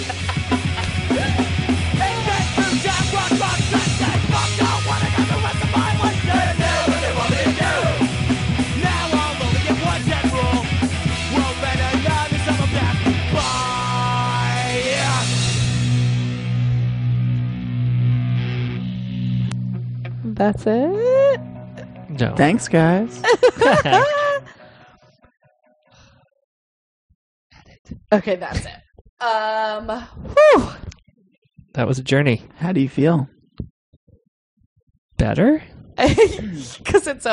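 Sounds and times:
laughter: 0.0s - 1.5s, 23.2s - 24.6s, 36.0s - 36.8s
loud dense rock song with driving drums and guitars: 0.0s - 19.8s, 22.2s - 24.3s
speech: 20.4s - 21.1s, 22.2s - 24.2s, 28.1s - 30.8s, 31.8s - 33.7s, 35.2s - 37.3s.

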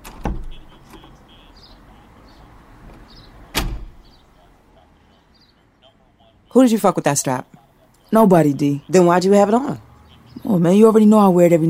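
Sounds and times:
door being opened with clunks: 0.0s - 1.3s, 2.8s - 4.2s
speech: 6.6s - 9.9s, 10.5s - 11.6s.

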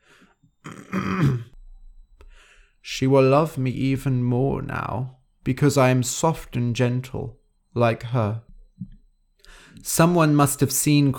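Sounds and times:
faint breaths: 0.0s - 0.5s, 2.1s - 2.9s, 9.3s - 9.9s
man clearing throat: 0.6s - 1.6s
speech: 2.9s - 8.9s, 9.5s - 11.1s.

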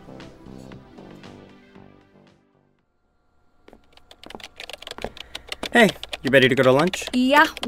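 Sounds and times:
typing up notes on a computer keyboard: 3.9s - 7.6s
speech: 5.7s - 7.6s.

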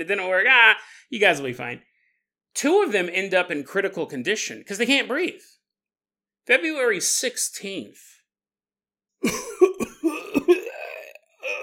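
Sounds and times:
speech: 0.0s - 1.9s, 2.6s - 5.6s, 6.4s - 8.1s, 9.2s - 9.6s
person imitating a man's fit of coughing into a spit tray: 9.2s - 11.6s.

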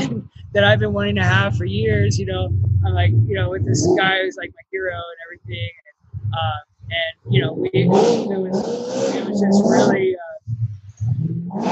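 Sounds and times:
muscle car engine revving outside: 0.0s - 11.7s
speech: 0.2s - 10.6s, 11.5s - 11.7s.

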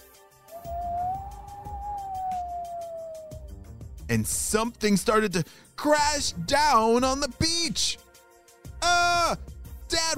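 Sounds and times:
howling wind: 0.5s - 3.5s
speech: 4.1s - 8.0s.

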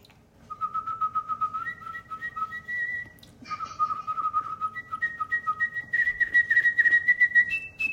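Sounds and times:
melodic tune whistled for a car advert: 0.5s - 7.9s.

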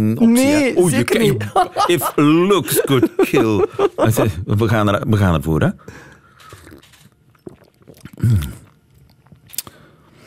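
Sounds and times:
speech: 0.0s - 6.1s, 8.2s - 8.6s
laughter: 1.2s - 4.4s
slurping a hot drink while tasting tea: 6.4s - 9.7s
small mouth and cup noises: 6.4s - 9.8s.

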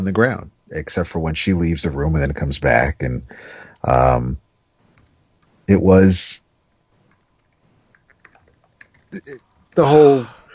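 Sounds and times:
speech: 0.0s - 4.4s, 5.7s - 6.4s, 9.1s - 10.4s
typing on a computer keyboard: 7.1s - 9.7s.

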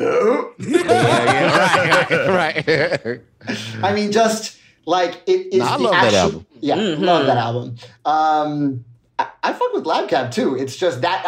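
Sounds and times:
loud gravelly burp: 0.0s - 0.6s
speech: 0.4s - 11.2s
laughter: 0.6s - 3.8s.

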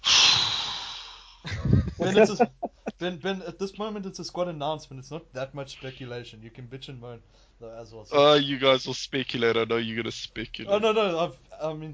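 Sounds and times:
person exaggerated heavy breathing into the mic: 0.0s - 1.5s
laughter: 1.5s - 2.9s
speech: 2.0s - 11.9s.

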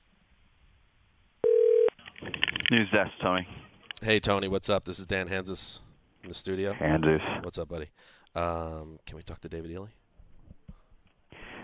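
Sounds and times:
loud steady telephone tone: 1.4s - 2.0s
speech: 2.7s - 10.0s.

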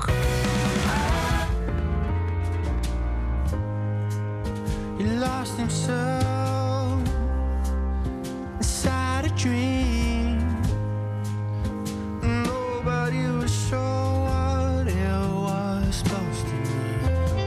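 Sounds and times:
man singing a melodic line: 0.0s - 1.6s, 4.9s - 7.8s, 8.5s - 11.0s, 12.2s - 17.4s
sustained synth chords: 0.0s - 13.9s
steady dense instrumental backing: 0.0s - 17.4s
speech: 5.3s - 6.4s.

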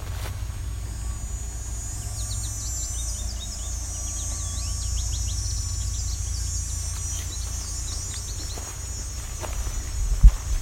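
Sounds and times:
faint insect trilling: 0.0s - 10.6s
low hum: 0.0s - 10.6s
several American goldfinches calling on a drumlin trail in Westover, Ontario: 0.7s - 10.4s.

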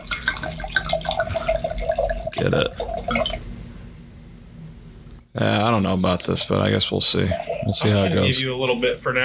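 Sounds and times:
alcohol pouring into a glass: 0.0s - 3.5s, 6.4s - 8.4s
speech: 2.4s - 3.2s, 5.4s - 9.2s.

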